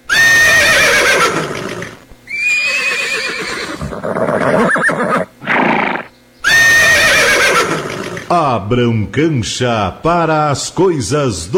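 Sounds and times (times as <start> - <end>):
herd of young horses neighing: 0.0 - 8.4
speech: 8.6 - 11.5.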